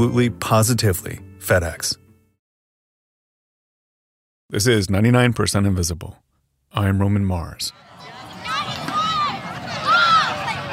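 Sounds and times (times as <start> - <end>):
speech: 0.0 - 2.0, 4.5 - 7.9
chatter in a park meadow: 7.7 - 10.7
kids shouting or whooping while launching a stomp rocket in a meadow: 7.8 - 10.7.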